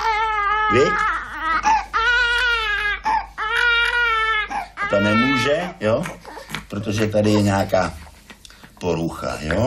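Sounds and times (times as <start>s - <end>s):
infant girl wailing: 0.0s - 7.7s
speech: 0.7s - 1.1s, 4.9s - 8.0s, 8.8s - 9.6s.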